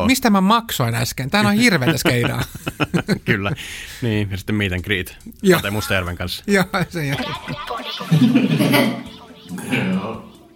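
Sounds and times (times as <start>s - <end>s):
speech: 0.0s - 10.3s
people chuckling: 1.4s - 3.6s, 5.5s - 10.5s
drawn-out throaty burp: 9.5s - 10.3s.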